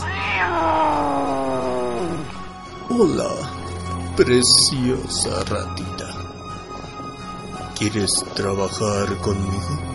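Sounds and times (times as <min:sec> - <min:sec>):
cat meowing: 0:00.0 - 0:02.4
speech: 0:03.0 - 0:03.5, 0:04.2 - 0:06.2, 0:07.8 - 0:09.9.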